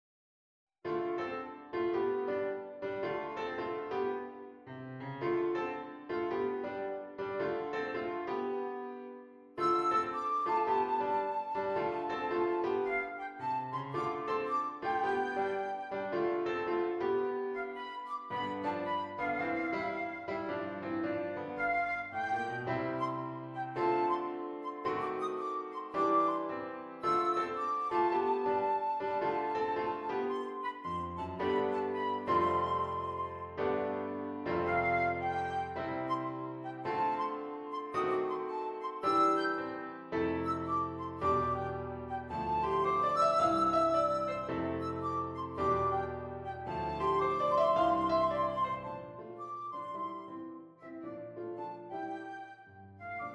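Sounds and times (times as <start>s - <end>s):
flute or oboe melody: 1.4s - 53.3s.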